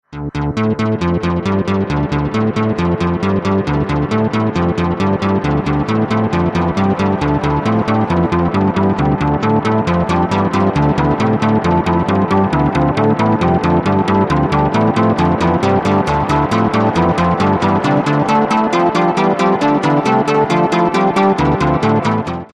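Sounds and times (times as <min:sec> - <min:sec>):
synthesizer experiment: 0:00.0 - 0:22.5.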